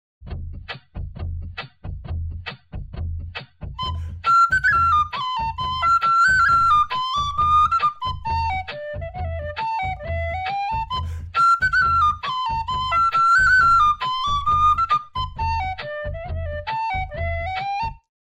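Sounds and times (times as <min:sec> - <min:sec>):
whistle: 0:03.8 - 0:18.1.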